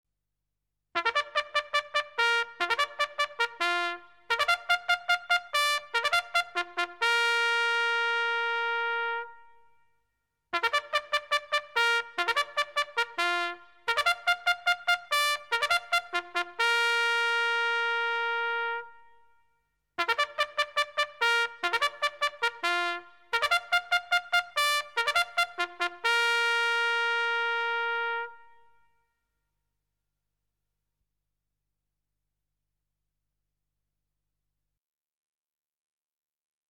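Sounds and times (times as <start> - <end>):
military trumpet ringtone: 1.0 - 9.6, 10.6 - 19.2, 20.0 - 28.9.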